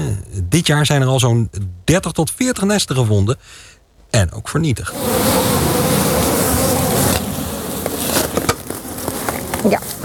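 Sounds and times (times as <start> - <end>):
speech: 0.0 - 6.0
many hornets buzzing around wooden beehives in a garden: 4.9 - 10.0.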